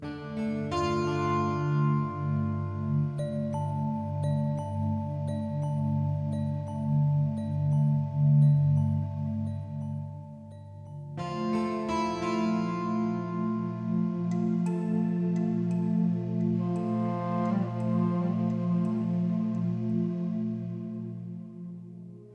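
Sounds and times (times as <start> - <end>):
fantasy exploration music loop: 0.0 - 22.3.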